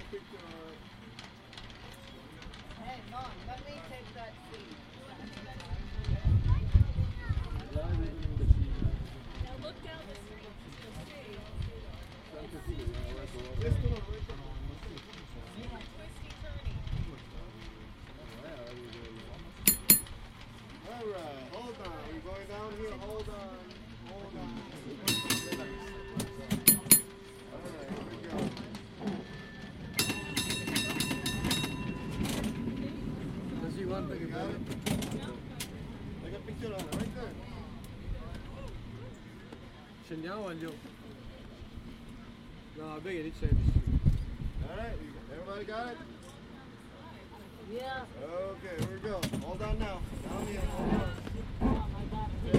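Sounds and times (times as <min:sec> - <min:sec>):
San Francisco cable car rumbling along its tracks: 0:00.0 - 0:52.5
passengers murmuring and talking: 0:00.0 - 0:52.5
cable car bell clanging: 0:19.7 - 0:20.2, 0:25.0 - 0:32.8
speech: 0:40.3 - 0:40.9, 0:43.0 - 0:43.8, 0:47.7 - 0:51.1.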